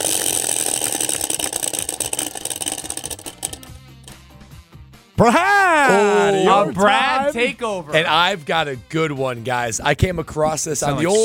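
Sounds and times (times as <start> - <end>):
prize wheel spinning with ticking clicks: 0.0 - 4.2
speech: 5.2 - 11.2.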